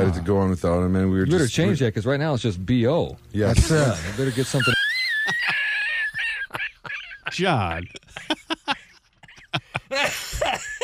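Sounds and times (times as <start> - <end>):
speech: 0.1 - 5.6, 7.4 - 8.3
laughter: 3.6 - 10.8
person coughing: 9.9 - 10.8.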